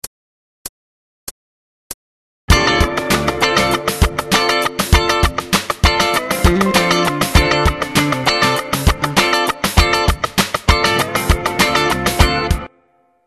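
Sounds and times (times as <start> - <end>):
funk music: 2.5 - 12.7.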